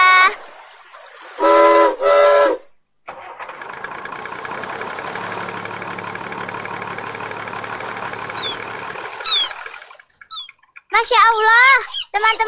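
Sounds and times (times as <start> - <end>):
ship engine starting up and rumbling: 0.0 - 11.2
ship steam whistle blasts: 1.4 - 2.7
speech: 11.1 - 12.4.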